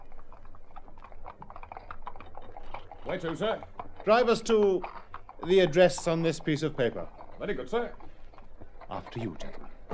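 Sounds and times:
hoofbeats of a horse pulling a four-wheeler cab: 0.0s - 9.9s
speech: 3.1s - 8.0s, 8.9s - 9.6s.

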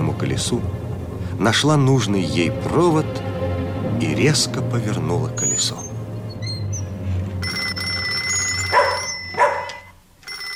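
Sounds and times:
speech: 0.2s - 0.8s, 1.4s - 3.3s, 4.0s - 5.9s
telephone ringing at night: 7.4s - 10.5s
dog barking: 8.7s - 9.9s.

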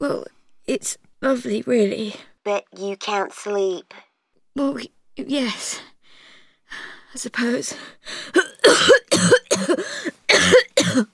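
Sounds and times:
speech: 0.0s - 5.9s, 6.7s - 10.1s, 10.9s - 11.1s
person coughing in harsh chesty bursts: 8.3s - 11.1s.

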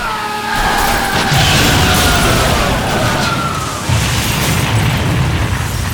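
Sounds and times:
deep rumbling roar: 0.0s - 5.7s
crackling debris: 0.0s - 5.9s
huge explosion: 0.6s - 5.9s.

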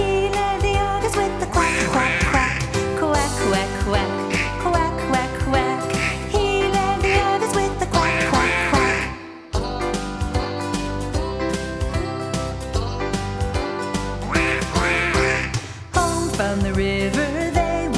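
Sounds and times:
children's song with bright musical accompaniment: 0.0s - 17.9s
duck quacking in a children's song: 1.6s - 2.8s, 4.2s - 5.2s, 5.9s - 9.4s, 14.3s - 15.7s.

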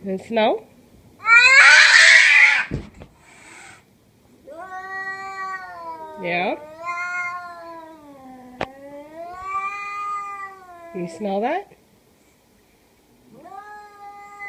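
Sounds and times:
speech: 0.0s - 0.7s, 6.2s - 6.7s, 11.0s - 11.8s
cat yowling angrily: 1.2s - 2.7s, 4.5s - 11.1s, 13.3s - 14.4s.

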